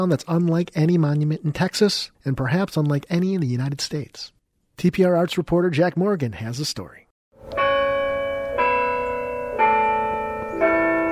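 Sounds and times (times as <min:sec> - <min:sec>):
speech: 0:00.0 - 0:07.6
church bell tolling: 0:07.4 - 0:11.1.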